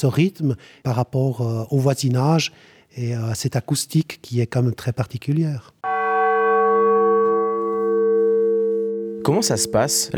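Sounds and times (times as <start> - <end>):
speech: 0.0 - 5.8, 9.2 - 10.1
smallest church bell ringing: 5.8 - 10.1.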